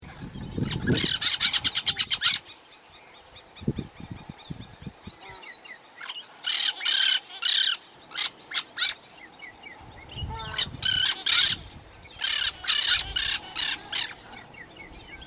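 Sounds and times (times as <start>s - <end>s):
brown-throated parakeet calling: 0.6s - 2.6s, 5.2s - 9.0s, 10.2s - 14.6s.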